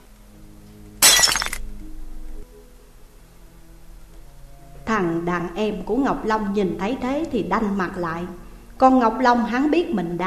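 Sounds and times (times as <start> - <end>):
glass cup kicked and shattered: 1.0 - 1.6
speech: 5.0 - 10.2.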